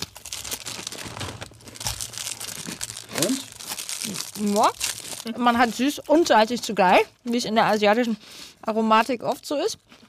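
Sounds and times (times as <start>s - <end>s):
plastic snack packaging crinkling as it is opened: 0.0s - 6.5s
speech: 4.4s - 9.9s.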